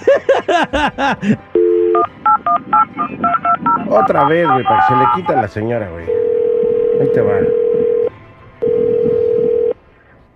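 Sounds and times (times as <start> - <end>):
laughter: 0.0 - 1.4
speech: 0.2 - 6.2, 7.0 - 7.9
telephone tone after a phone call drops: 1.6 - 5.4, 6.1 - 9.8.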